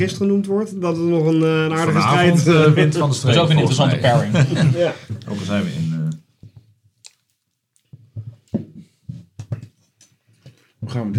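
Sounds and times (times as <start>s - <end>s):
speech: 0.0s - 5.8s, 10.9s - 11.1s
laughter: 3.2s - 5.8s
wet chewing of a bite of food: 7.0s - 8.0s.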